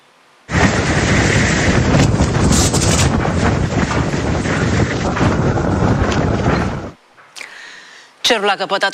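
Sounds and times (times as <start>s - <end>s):
faint windy hiss: 0.0s - 8.9s
powerful sandstorm winds roaring and buffeting the microphone: 0.5s - 7.0s.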